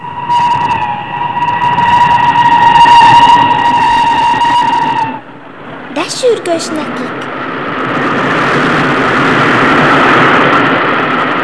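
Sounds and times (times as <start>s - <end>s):
train horn tone: 0.0s - 5.4s
train rumbling past: 0.0s - 11.4s
speech: 6.5s - 6.9s.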